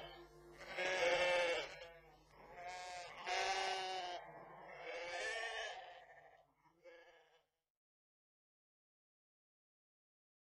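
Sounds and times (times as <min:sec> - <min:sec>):
sheep bleating: 0:00.0 - 0:07.5.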